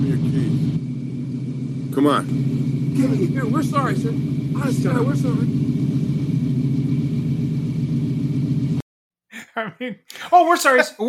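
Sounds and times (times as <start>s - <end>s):
car engine roaring during a car chase: 0.0s - 8.8s
speech: 2.0s - 5.7s, 9.6s - 11.0s.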